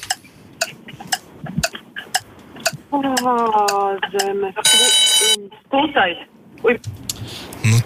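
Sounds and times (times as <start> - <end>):
quiz timer ticking in sharp clicks: 0.0 - 5.2
speech: 2.9 - 7.0
loud bright bell ringing: 4.6 - 5.4.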